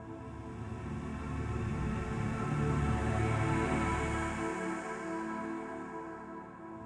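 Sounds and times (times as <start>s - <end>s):
space synth pad on keys: 0.0s - 6.8s.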